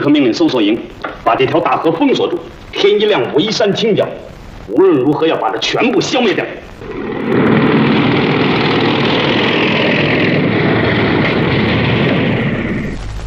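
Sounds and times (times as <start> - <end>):
speech: 0.0 - 7.5
several approaching motorcycle engines roaring: 6.8 - 12.9.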